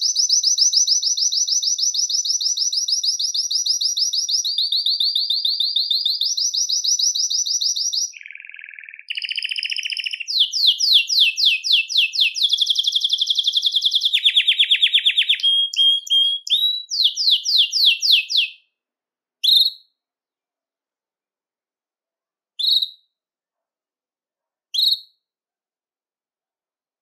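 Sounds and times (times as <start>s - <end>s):
Belgian canary singing trills: 0.0s - 18.6s.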